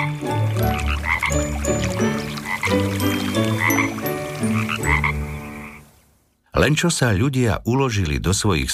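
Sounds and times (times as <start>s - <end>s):
frogs croaking at a pond at night: 0.0s - 6.3s
speech: 6.7s - 8.7s.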